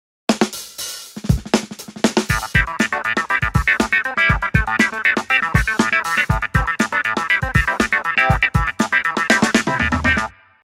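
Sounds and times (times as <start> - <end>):
clavinet: 2.2 - 10.5.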